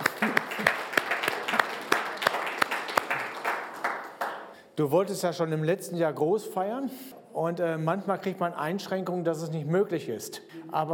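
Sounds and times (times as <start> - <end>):
room full of people clapping for a birthday: 0.0 - 4.6
speech: 4.8 - 10.9.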